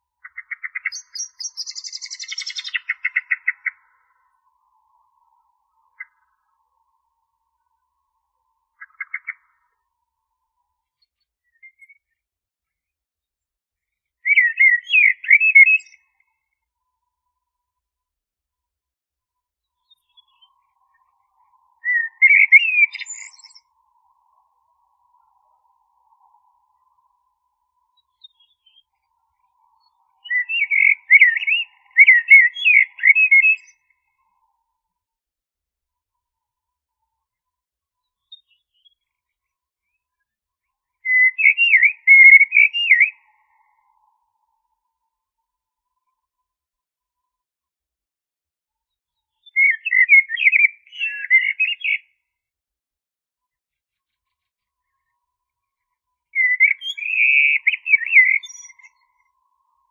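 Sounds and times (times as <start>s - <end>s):
blackbird: 0.0s - 6.8s, 8.4s - 10.0s, 10.9s - 12.2s, 14.1s - 16.6s, 19.7s - 34.5s, 38.0s - 44.8s, 49.1s - 52.2s, 53.9s - 59.8s.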